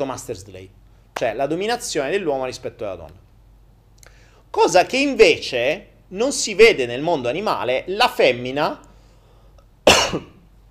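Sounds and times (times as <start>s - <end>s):
speech: 0.0s - 3.2s, 4.5s - 8.9s, 10.1s - 10.3s
person coughing: 9.8s - 10.4s.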